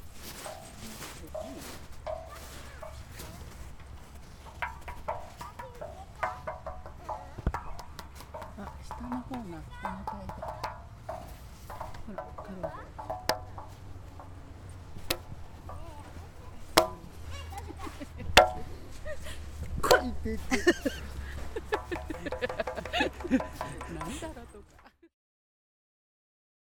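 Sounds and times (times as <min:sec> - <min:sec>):
kama pot being struck: 0:00.3 - 0:17.3, 0:18.3 - 0:18.8, 0:19.9 - 0:20.3, 0:21.7 - 0:24.5
laughter: 0:17.5 - 0:25.0.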